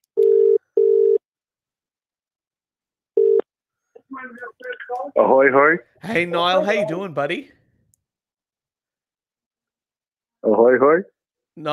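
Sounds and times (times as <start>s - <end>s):
ringback tone of an outgoing telephone call: 0.2s - 1.2s, 3.2s - 3.4s
speech: 4.2s - 7.6s, 10.7s - 11.7s.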